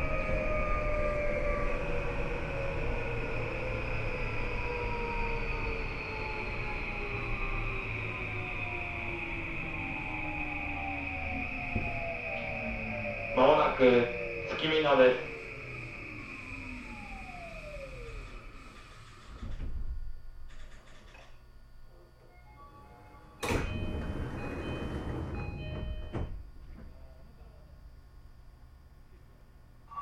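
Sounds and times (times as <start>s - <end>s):
commuter train electric motor whine: 0.0s - 19.4s
local commuter train rumble heard from inside: 0.0s - 21.3s, 23.4s - 27.1s
speech: 13.8s - 15.3s.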